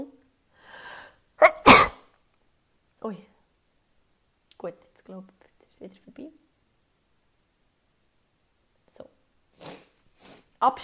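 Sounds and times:
loud sneeze: 1.4s - 2.0s
speech: 3.0s - 3.3s, 4.6s - 6.4s, 10.6s - 10.8s.

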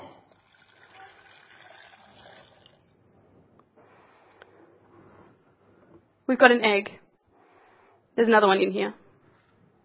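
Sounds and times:
hot water pouring into a container: 0.3s - 3.0s
speech: 6.3s - 7.0s, 8.2s - 9.0s.

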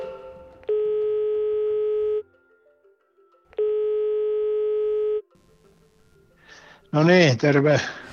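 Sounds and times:
telephone ringback tone while placing call: 0.6s - 2.3s, 3.5s - 5.3s
speech: 7.0s - 8.1s.

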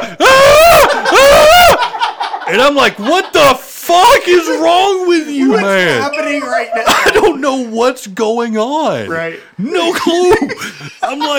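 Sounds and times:
man imitating screaming: 0.0s - 1.8s, 4.0s - 6.2s
laughter: 0.0s - 7.4s, 9.6s - 11.3s
speech: 2.5s - 11.3s.

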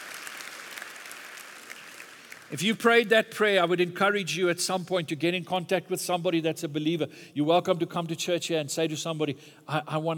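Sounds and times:
audience applauding: 0.0s - 2.6s
speech: 2.5s - 10.1s.

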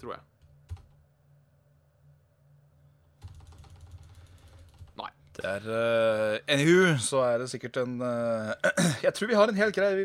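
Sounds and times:
speech: 0.0s - 0.3s, 5.0s - 10.0s
typing on a computer keyboard: 0.4s - 1.0s, 3.2s - 5.0s.

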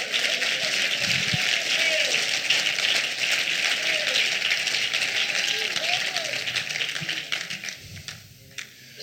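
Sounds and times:
scattered voices and cheers: 0.0s - 2.4s, 3.6s - 6.7s
crowd clapping hands in praise to the Lord: 0.0s - 8.7s.

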